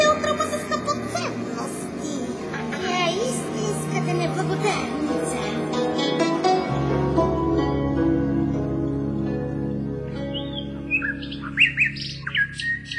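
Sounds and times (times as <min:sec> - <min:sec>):
sustained soft orchestral chord: 0:00.0 - 0:11.6
nightingale singing: 0:10.2 - 0:12.9.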